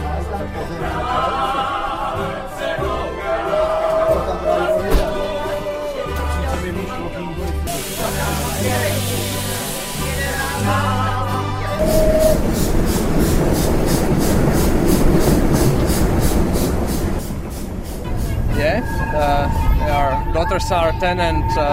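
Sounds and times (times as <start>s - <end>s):
music: 0.0s - 16.0s, 17.5s - 21.7s
moving passenger train rumbling, wheels clattering over the rails: 11.8s - 19.0s
speech: 20.6s - 21.7s.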